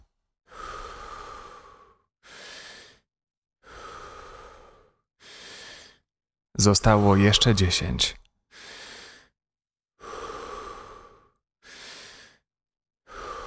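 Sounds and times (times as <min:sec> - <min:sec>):
deep rhythmic breathing during a breathwork exercise: 0:00.5 - 0:07.6, 0:08.5 - 0:09.4, 0:10.0 - 0:13.4
speech: 0:06.6 - 0:08.3.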